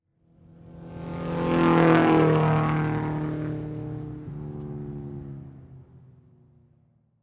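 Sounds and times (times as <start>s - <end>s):
race car drive by near pit with downshift: 0.6s - 5.7s.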